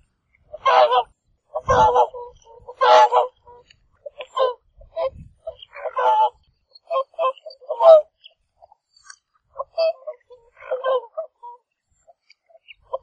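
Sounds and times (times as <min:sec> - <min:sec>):
whooper swans calling in Iceland: 0:00.5 - 0:08.1, 0:09.6 - 0:11.6.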